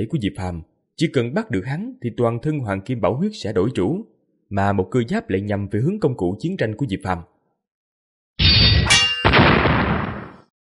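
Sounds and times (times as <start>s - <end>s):
speech: 0.0s - 7.3s
swords ringing: 8.4s - 9.4s
golden bell clanging: 8.7s - 9.4s.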